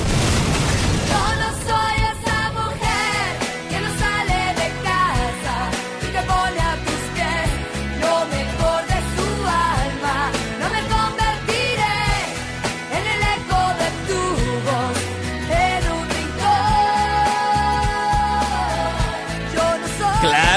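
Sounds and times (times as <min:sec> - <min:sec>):
pop song played over a radio broadcast: 0:01.0 - 0:20.5.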